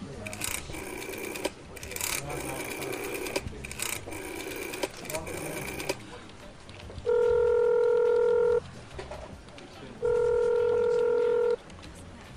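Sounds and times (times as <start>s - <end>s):
phone being dialed with mechanical tapping and beeps: 0.2s - 6.4s, 7.0s - 8.6s, 10.0s - 11.8s.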